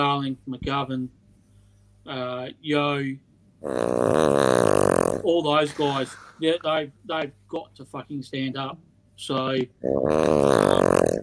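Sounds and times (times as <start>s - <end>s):
speech: 0.0s - 1.2s, 2.0s - 4.4s, 5.2s - 11.2s
sleeping dog snoring: 3.6s - 6.1s, 9.8s - 11.2s.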